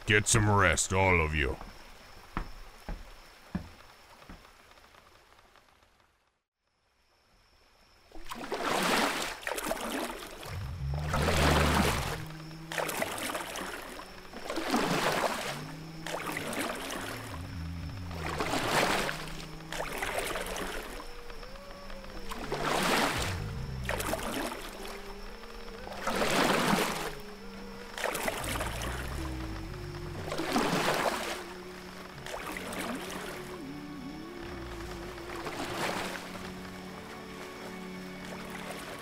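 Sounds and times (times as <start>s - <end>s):
speech: 0.1s - 1.7s
oars rowing a wooden boat through river water: 8.1s - 39.0s.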